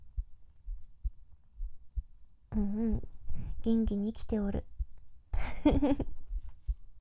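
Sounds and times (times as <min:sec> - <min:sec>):
heartbeat picked up by microphone: 0:00.0 - 0:07.0
speech: 0:02.6 - 0:04.7, 0:05.6 - 0:06.2.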